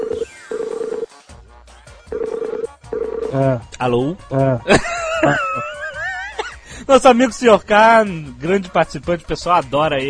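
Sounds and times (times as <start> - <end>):
telephone line ringing as a call is placed: 0.0 - 1.1, 2.1 - 3.3
speech: 3.3 - 5.7, 6.9 - 10.0
laughter: 4.6 - 6.6.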